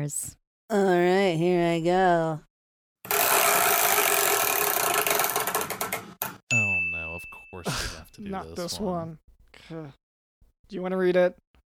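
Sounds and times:
speech: 0:00.0 - 0:02.5, 0:07.6 - 0:10.0, 0:10.7 - 0:11.4
chore wheel being spun: 0:03.1 - 0:06.1.

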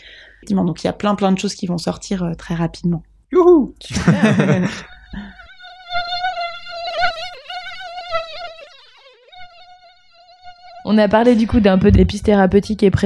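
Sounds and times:
speech: 0:00.4 - 0:05.2, 0:10.9 - 0:13.0
laughter: 0:03.9 - 0:05.4
mosquito buzzing: 0:04.8 - 0:11.5.

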